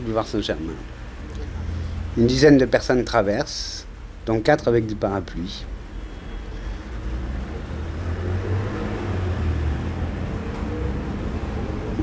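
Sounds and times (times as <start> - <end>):
street traffic rumble on boulevard Saint-Germain: 0.0 - 12.0
speech: 0.1 - 1.5, 2.2 - 5.7
vehicle engine passing: 1.1 - 3.2, 6.5 - 12.0.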